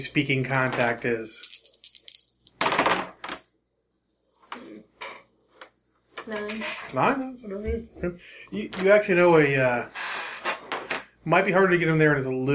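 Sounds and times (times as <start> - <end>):
speech: 0.0 - 1.5, 6.3 - 10.0, 11.2 - 12.5
dice clattering and rattling across a hard surface: 0.6 - 3.4.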